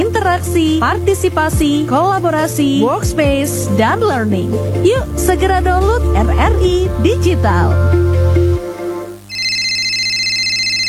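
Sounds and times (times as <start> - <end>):
speech: 0.4 - 8.1
phone ringtone signalling an incoming call: 9.3 - 10.8.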